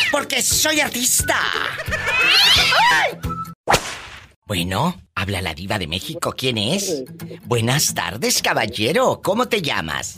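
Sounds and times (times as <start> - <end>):
speech: 0.1 - 3.4, 4.5 - 10.1
cat yowling with wavering screeches as it is grabbed: 2.1 - 3.1
sharp smacking hits: 3.7 - 4.4.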